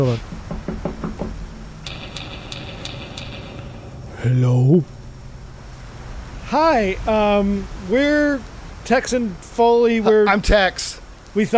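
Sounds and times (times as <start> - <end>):
speech: 0.0 - 0.3, 4.2 - 4.9, 6.5 - 11.5
low rumble: 0.0 - 10.0
knocking on a door: 0.2 - 3.8.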